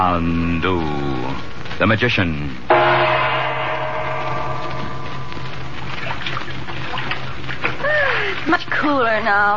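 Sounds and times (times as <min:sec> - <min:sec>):
speech: 0:00.0 - 0:01.1, 0:01.8 - 0:03.1, 0:08.5 - 0:09.5
low constant hum: 0:00.0 - 0:09.5
water lapping and trickling around a felucca sailboat on the Nile: 0:04.8 - 0:09.5.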